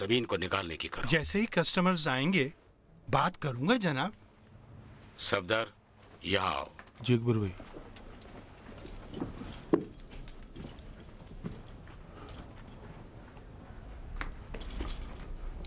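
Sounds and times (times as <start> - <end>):
speech: 0.0 - 4.2, 5.2 - 7.8
bunch of premises keys jangling: 9.4 - 13.0, 14.1 - 15.6.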